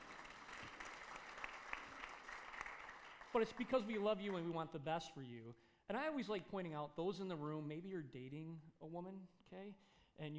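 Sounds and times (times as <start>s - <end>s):
congregation applauding in a large room: 0.0s - 4.4s
speech: 3.3s - 10.3s.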